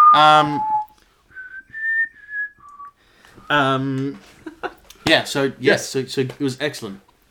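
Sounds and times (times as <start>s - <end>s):
person whistling: 0.0s - 3.6s
speech: 0.2s - 0.7s, 3.5s - 7.2s.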